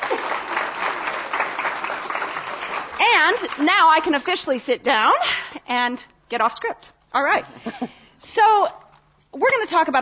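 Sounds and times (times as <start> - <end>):
audience applause at a wine panel: 0.0 - 4.2
speech: 3.2 - 9.9.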